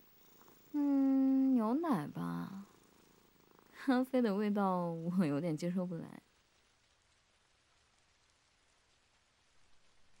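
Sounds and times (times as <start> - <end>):
faint hush: 0.0 - 1.6
kitten purring: 0.0 - 6.4
speech: 1.7 - 2.6, 3.9 - 6.3.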